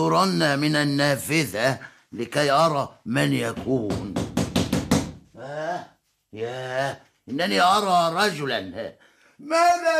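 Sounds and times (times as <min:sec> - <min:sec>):
speech: 0:00.0 - 0:04.2, 0:05.8 - 0:09.9
knocking on the door of a house: 0:03.4 - 0:05.3.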